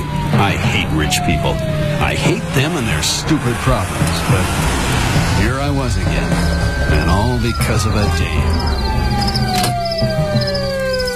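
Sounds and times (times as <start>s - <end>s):
dense rumbling background: 0.0s - 11.1s
siren wailing: 0.0s - 11.1s
speech: 0.4s - 10.5s
burst of noise: 1.9s - 10.0s.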